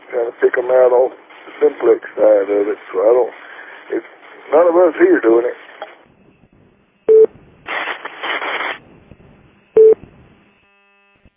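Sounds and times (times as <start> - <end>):
harsh hissing radio interference: 0.0 - 11.3
speech: 0.2 - 5.7
radio repeater electronic beep: 7.1 - 7.3, 9.7 - 10.0.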